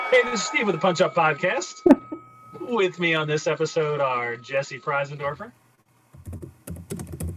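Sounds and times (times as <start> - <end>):
speech: 0.1 - 2.0, 2.7 - 5.6
typing on a computer keyboard: 6.2 - 7.3.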